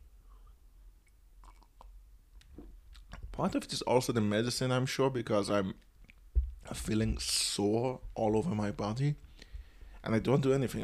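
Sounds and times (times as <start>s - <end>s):
soft wet mouth clicks: 1.0s - 2.0s, 2.9s - 3.2s
quiet sipping from a drink: 1.4s - 2.0s
speech: 3.4s - 5.9s, 6.7s - 9.3s, 10.0s - 10.8s.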